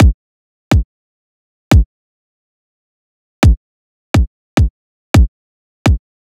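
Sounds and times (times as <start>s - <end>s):
riddim kick drum loop: 0.0s - 0.8s, 4.2s - 5.3s.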